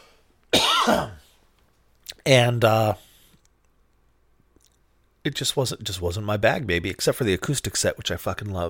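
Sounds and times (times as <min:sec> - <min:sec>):
harsh cough: 0:00.5 - 0:01.3
speech: 0:00.8 - 0:01.2, 0:02.3 - 0:03.0, 0:05.2 - 0:08.6.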